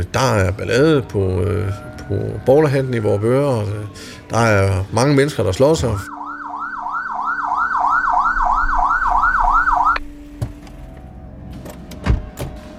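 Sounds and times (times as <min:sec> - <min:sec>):
speech: 0:00.0 - 0:06.2
police car siren yelping: 0:06.0 - 0:10.1.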